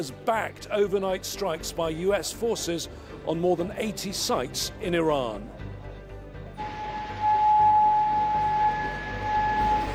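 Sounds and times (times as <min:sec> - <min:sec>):
speech: 0:00.0 - 0:05.6
air raid siren: 0:06.6 - 0:09.9.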